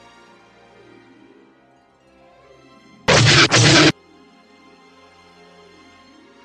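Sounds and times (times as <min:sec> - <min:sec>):
faint hum: 0:03.1 - 0:03.9
sci-fi starfighter proton blaster shots hitting a spaceship: 0:03.1 - 0:03.9.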